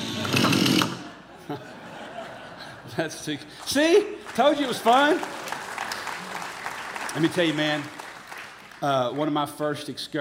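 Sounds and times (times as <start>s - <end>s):
chainsaw revving and idling in a backyard during disaster relief work: 0.0s - 1.0s
laughter: 1.0s - 3.2s
speech: 1.5s - 1.7s, 3.0s - 5.4s, 7.2s - 8.0s, 8.8s - 10.1s.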